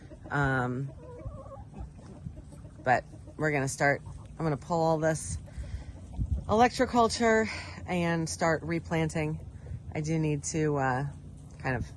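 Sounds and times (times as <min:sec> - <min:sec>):
chicken clucking: 0:00.0 - 0:06.7
speech: 0:00.3 - 0:01.0, 0:02.8 - 0:05.4, 0:06.5 - 0:09.4, 0:10.0 - 0:11.9.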